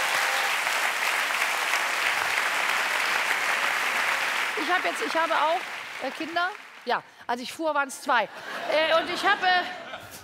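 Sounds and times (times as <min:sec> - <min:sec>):
audience applause: 0:00.0 - 0:07.1
speech: 0:04.6 - 0:09.8
laughter: 0:08.3 - 0:10.2.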